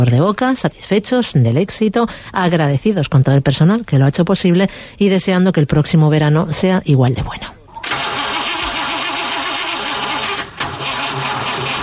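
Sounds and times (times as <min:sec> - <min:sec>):
speech: 0:00.0 - 0:08.0
car engine cranking but failing to start: 0:07.8 - 0:11.8.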